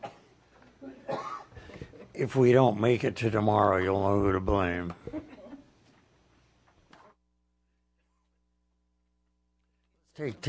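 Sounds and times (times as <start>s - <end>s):
person coughing with a congested edge: 0.0s - 1.9s
speech: 2.2s - 5.0s, 10.2s - 10.4s.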